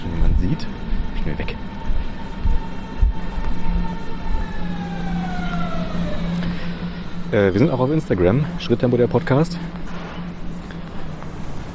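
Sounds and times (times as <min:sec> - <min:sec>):
S-Bahn commuter train arriving and braking: 0:00.0 - 0:11.7
speech: 0:00.5 - 0:01.7, 0:07.3 - 0:09.8.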